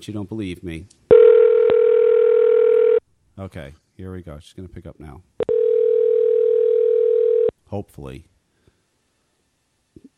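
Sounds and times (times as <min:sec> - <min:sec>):
speech: 0:00.0 - 0:01.0, 0:03.4 - 0:05.4, 0:07.7 - 0:08.3
telephone dial tone while placing a call: 0:01.1 - 0:03.0, 0:05.5 - 0:07.5.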